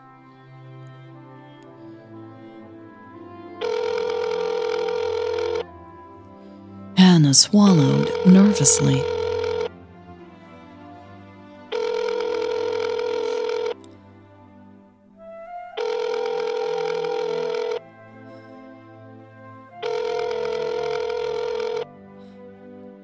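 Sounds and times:
phone ringback tone during an outgoing call: 3.6 - 5.6, 7.0 - 9.7, 11.7 - 13.8, 15.8 - 17.8, 19.8 - 21.9
speech: 7.2 - 9.2.

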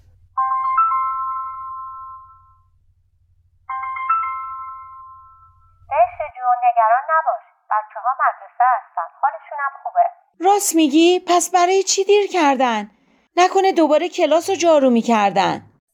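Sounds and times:
mobile phone ringing with an electronic melody: 0.4 - 2.7, 3.7 - 5.9
speech: 6.8 - 8.8, 9.6 - 15.7.

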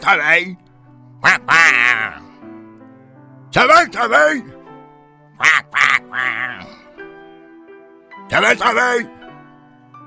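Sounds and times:
speech: 0.0 - 2.2, 3.5 - 4.6, 5.4 - 6.8, 8.3 - 9.2
voice imitating a duck answering a farmer with nasal quacks: 1.2 - 2.4, 5.4 - 6.8.

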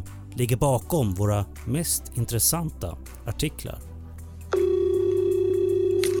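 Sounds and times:
speech: 0.4 - 3.9
telephone ringing tone of an outgoing call: 4.6 - 6.1.

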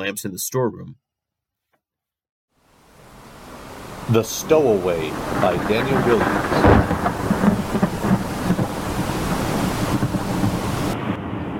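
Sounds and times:
speech: 0.0 - 1.1, 4.1 - 6.8
heavy rain: 2.6 - 11.5
deep rolling thunder: 3.9 - 11.5.

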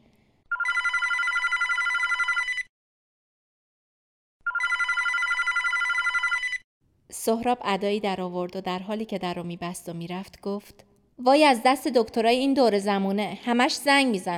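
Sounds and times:
telephone bell ringing: 0.5 - 2.7, 4.5 - 6.6
speech: 7.2 - 14.3.

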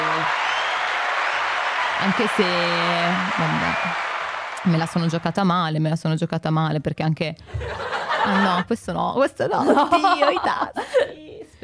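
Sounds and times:
canned applause effect from a button: 0.0 - 5.5
speech: 2.0 - 11.6
laughter: 7.5 - 8.7, 9.6 - 11.4.

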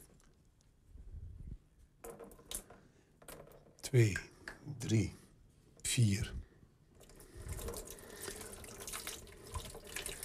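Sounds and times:
speech: 3.9 - 5.2, 6.0 - 6.4
water poured over a photographic plate: 7.0 - 10.2.

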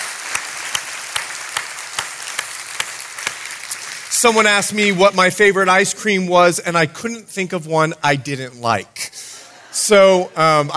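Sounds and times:
large audience applauding: 0.0 - 4.2
speech: 4.2 - 10.7.

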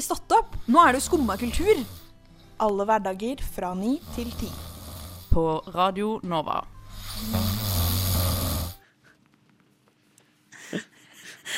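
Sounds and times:
speech: 0.0 - 2.0, 2.6 - 4.7, 5.3 - 7.6
person snoring: 0.8 - 2.1, 4.0 - 5.4, 6.8 - 8.8.

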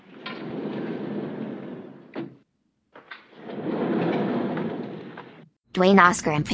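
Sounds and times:
heavy elevator doors sliding open on their track: 0.0 - 2.4, 3.0 - 5.5
speech: 5.8 - 6.5.

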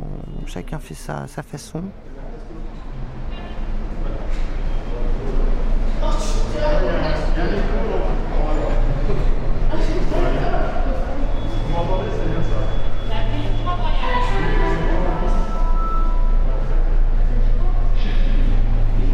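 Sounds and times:
speech: 0.5 - 2.6
indistinct voices murmuring: 2.0 - 19.1
metro train rumbling into a station: 2.0 - 19.1
thin high whine: 10.8 - 19.1.

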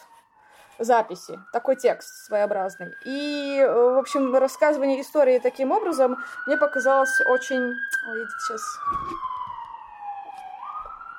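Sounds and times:
ambulance siren wailing outside: 0.0 - 11.1
speech: 0.8 - 9.3.

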